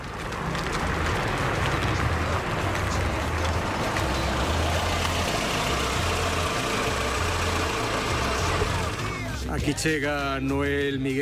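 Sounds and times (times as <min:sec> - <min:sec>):
car engine idling: 0:00.0 - 0:10.0
speech: 0:09.6 - 0:11.2.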